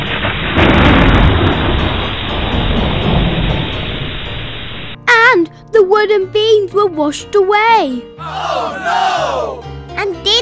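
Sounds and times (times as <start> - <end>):
loud crash of rolling thunder: 0.0 - 5.0
steady rush of heavy rain: 0.0 - 5.0
speech: 6.0 - 10.3.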